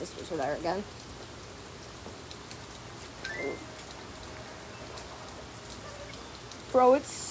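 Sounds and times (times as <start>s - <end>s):
speech: 0.0s - 1.1s, 3.4s - 3.7s, 6.7s - 7.3s
pouring rain: 0.0s - 7.3s
short rising chirp: 3.2s - 3.7s.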